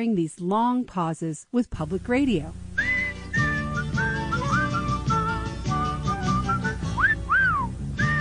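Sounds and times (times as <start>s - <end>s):
speech: 0.0s - 2.6s
steady instrumental backing: 2.8s - 8.1s
whistled Irish folk melody with glides and trills: 2.8s - 8.1s.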